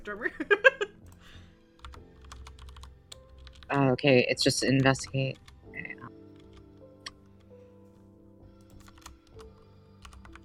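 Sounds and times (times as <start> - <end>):
speech: 0.0 - 0.8, 3.7 - 5.4
someone typing on a keyboard: 1.8 - 3.8, 4.7 - 7.5, 8.6 - 10.4.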